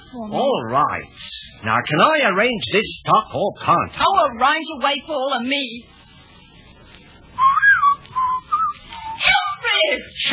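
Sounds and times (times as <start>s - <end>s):
speech: 0.1s - 6.0s, 9.8s - 10.3s
person whistling a short wavering tune: 7.4s - 9.2s.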